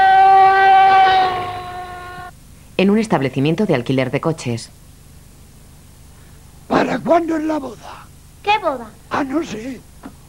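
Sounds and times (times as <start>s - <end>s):
ambulance siren passing over a nearby bridge: 0.0s - 2.3s
speech: 2.8s - 4.8s, 6.9s - 9.9s.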